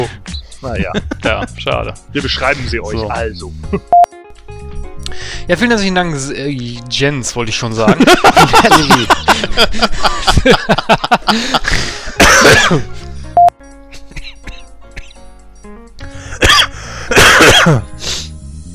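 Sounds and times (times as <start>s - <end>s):
speech: 0.0s - 4.0s, 5.4s - 13.0s
laughter: 0.6s - 1.6s, 7.8s - 12.8s
person coughing hard after choking on something: 12.2s - 12.9s, 13.9s - 15.2s, 16.1s - 17.9s.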